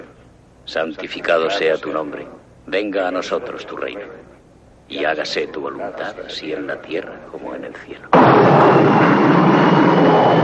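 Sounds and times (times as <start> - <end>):
speech: 0.7 - 4.3, 4.9 - 9.3
private jet aircraft roaring overhead: 8.2 - 10.4.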